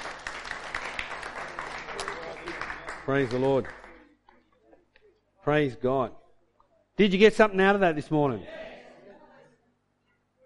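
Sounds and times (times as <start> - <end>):
audience applause: 0.0 - 4.1
speech: 3.1 - 3.8, 5.5 - 6.2, 7.0 - 8.6.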